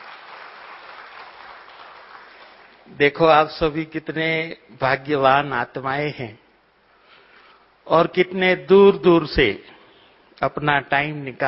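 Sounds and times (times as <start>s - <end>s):
audience applause at a religious assembly: 0.0s - 2.9s
speech: 2.9s - 6.4s, 7.9s - 9.7s, 10.4s - 11.4s.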